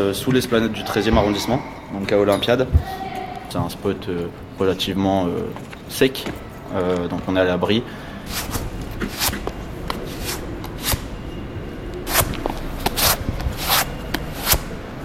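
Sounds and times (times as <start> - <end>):
speech: 0.0 - 8.6
shoe soles rubbed against dry ground in an underground car park: 8.3 - 11.0, 12.1 - 14.6.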